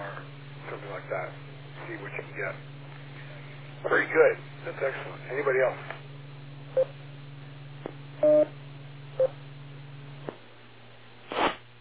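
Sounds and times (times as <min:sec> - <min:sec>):
low hum: 0:00.0 - 0:11.2
speech: 0:01.0 - 0:02.8, 0:03.8 - 0:06.1, 0:06.8 - 0:07.0
radio link electronic tone beeps: 0:08.2 - 0:08.5.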